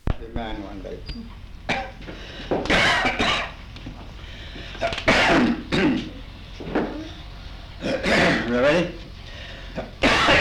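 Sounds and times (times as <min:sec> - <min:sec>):
speech: 0:00.2 - 0:03.4
harsh cough: 0:01.7 - 0:03.6, 0:04.8 - 0:06.2, 0:07.8 - 0:08.9, 0:09.8 - 0:10.4
throat clearing: 0:01.7 - 0:03.6, 0:04.6 - 0:07.2, 0:07.8 - 0:08.6, 0:09.8 - 0:10.4.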